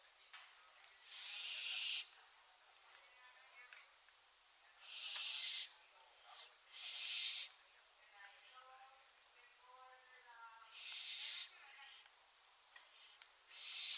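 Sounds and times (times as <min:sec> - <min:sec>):
barn owl Tyto alba hissing screeches: 0:01.0 - 0:02.1, 0:04.8 - 0:05.7, 0:06.3 - 0:07.6, 0:10.7 - 0:12.1, 0:12.9 - 0:13.9.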